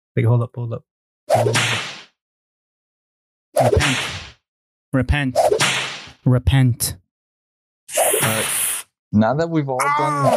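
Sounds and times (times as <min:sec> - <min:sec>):
speech: 0:00.2 - 0:02.0, 0:03.6 - 0:04.2, 0:04.9 - 0:05.6, 0:06.2 - 0:07.0, 0:07.9 - 0:08.5, 0:09.1 - 0:10.3
whip cracks: 0:01.3 - 0:02.1, 0:03.6 - 0:04.4, 0:05.4 - 0:06.2.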